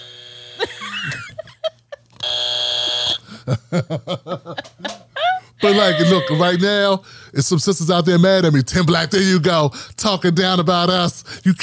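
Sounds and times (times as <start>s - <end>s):
loud harsh buzzer: 0.0s - 1.3s, 2.2s - 3.3s
quick run of rhythmic chuckling laughter: 0.6s - 2.1s, 3.3s - 6.8s
speech: 3.5s - 4.6s, 5.6s - 11.6s.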